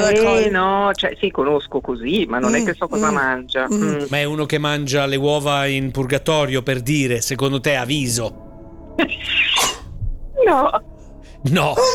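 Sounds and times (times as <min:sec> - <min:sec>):
speech: 0:00.1 - 0:09.6, 0:10.4 - 0:11.9
sneeze straight into a microphone: 0:09.5 - 0:09.9.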